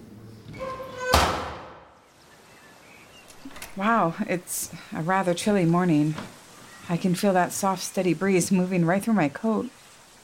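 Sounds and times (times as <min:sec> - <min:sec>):
side door creaking: 0:00.4 - 0:01.8, 0:03.2 - 0:03.9
side door thudding shut: 0:00.7 - 0:01.9
speech: 0:03.8 - 0:09.8.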